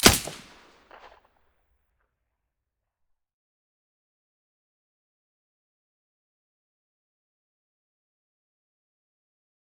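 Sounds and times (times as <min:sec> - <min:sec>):
rifle firing with silencer: 0:00.0 - 0:01.1.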